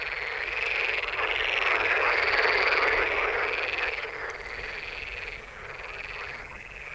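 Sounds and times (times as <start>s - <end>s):
dense chorus of frogs croaking: 0.0s - 6.9s.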